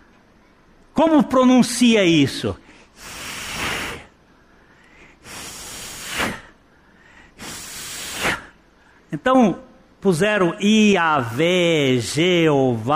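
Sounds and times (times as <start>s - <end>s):
speech: 1.0s - 3.2s, 9.2s - 12.9s
person making slow breathy exhalations imitating breathing: 2.9s - 4.1s, 4.8s - 8.5s.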